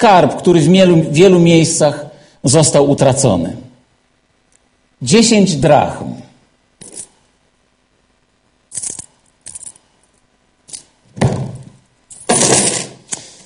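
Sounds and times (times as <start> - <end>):
speech: 0.0 - 3.7, 5.0 - 6.2
metal coins from Mexico and Singapore clinking as dropped and shuffled: 8.7 - 9.9.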